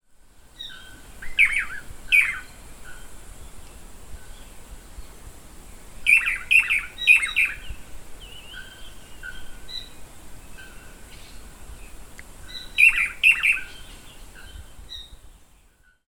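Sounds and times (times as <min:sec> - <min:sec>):
Chiroxiphia caudata calling: 0:00.6 - 0:03.2, 0:06.0 - 0:11.5, 0:12.5 - 0:15.2.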